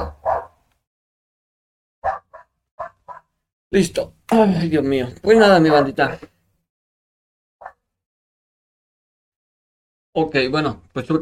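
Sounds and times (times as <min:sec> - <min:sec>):
dog barking: 0:00.0 - 0:00.6, 0:02.0 - 0:03.4, 0:05.7 - 0:06.2, 0:07.6 - 0:07.8
speech: 0:03.7 - 0:06.3, 0:10.2 - 0:11.2.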